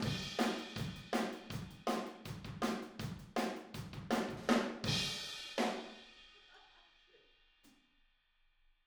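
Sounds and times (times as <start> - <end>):
outro drums: 0.0 - 6.8.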